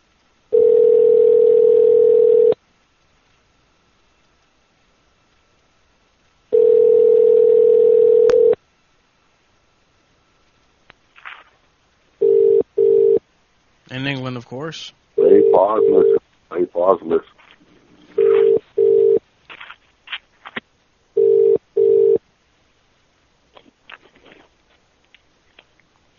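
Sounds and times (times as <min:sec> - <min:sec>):
telephone dial tone while a call is placed: 0:00.5 - 0:02.6, 0:06.5 - 0:08.6, 0:12.2 - 0:13.2, 0:18.2 - 0:19.2, 0:21.2 - 0:22.2
speech: 0:14.5 - 0:17.4.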